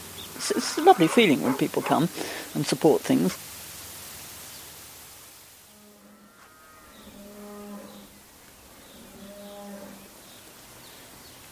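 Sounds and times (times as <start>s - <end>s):
Hereford cattle mooing: 0.4s - 2.1s, 5.7s - 8.2s, 8.9s - 10.1s
speech: 0.5s - 3.5s.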